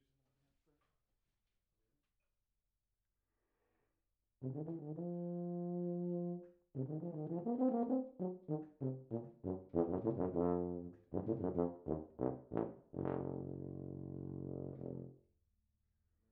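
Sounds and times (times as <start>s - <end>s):
tuba: 4.4s - 15.3s.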